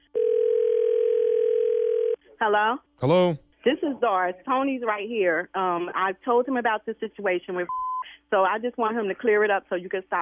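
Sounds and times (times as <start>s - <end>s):
telephone dial tone while placing call: 0.2s - 2.2s
speech: 2.4s - 10.2s.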